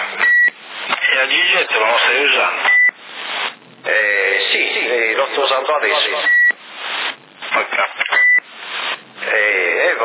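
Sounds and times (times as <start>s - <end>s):
hissy band-limited CB radio audio: 0.0s - 10.0s
speech: 1.5s - 2.8s
short high electronic beep over a CB radio: 8.1s - 8.5s.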